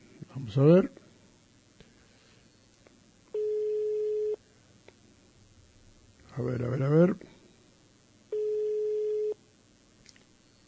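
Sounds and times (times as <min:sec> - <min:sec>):
speech: 0:00.5 - 0:01.0
telephone tone after a dropped call: 0:03.4 - 0:04.4, 0:08.3 - 0:09.4.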